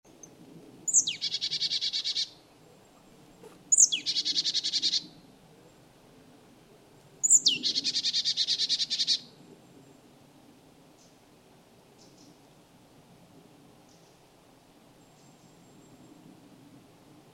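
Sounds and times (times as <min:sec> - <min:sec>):
low background noise: 0:00.1 - 0:17.3
Poecile palustris marsh tit call: 0:00.9 - 0:02.3, 0:03.4 - 0:05.0, 0:07.2 - 0:09.2.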